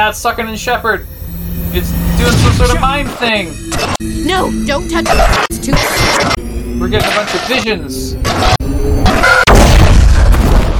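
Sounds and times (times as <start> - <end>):
speech: 0.0 - 9.4
video game explosion: 2.2 - 3.3, 8.3 - 10.7
crackling debris: 9.3 - 10.7.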